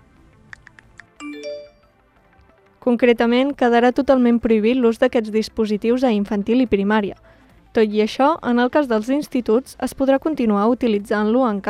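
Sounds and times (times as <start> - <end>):
electronic pings: 1.2 - 1.9
two-tone phone notification chime: 1.2 - 2.0
speech: 2.9 - 11.6.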